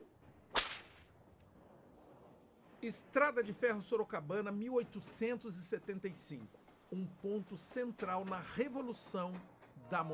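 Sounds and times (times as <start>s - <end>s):
whip crack: 0.5s - 1.1s
speech: 2.8s - 10.1s.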